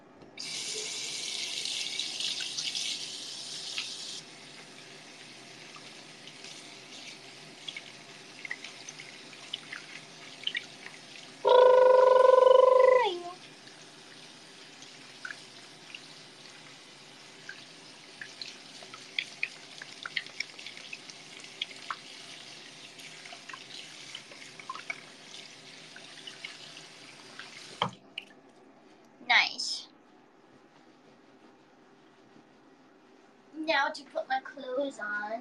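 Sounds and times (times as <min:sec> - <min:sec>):
running tap water over hands being washed: 0:00.4 - 0:28.0
speech: 0:33.7 - 0:35.3.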